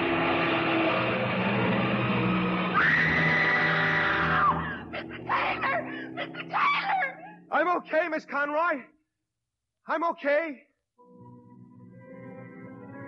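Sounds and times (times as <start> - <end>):
truck loud rumbling engine roar: 0.0 - 6.5
woman long high sustained scream: 2.7 - 7.5
speech: 7.8 - 9.0, 9.8 - 11.2.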